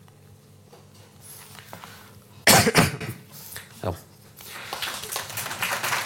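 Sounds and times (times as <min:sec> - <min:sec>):
person coughing: 0:02.4 - 0:03.3
speech: 0:03.8 - 0:04.0.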